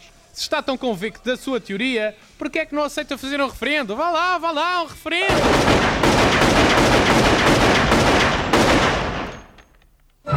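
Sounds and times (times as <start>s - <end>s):
speech: 0.4s - 6.2s
rapid series of pistol gunshots: 5.3s - 9.7s.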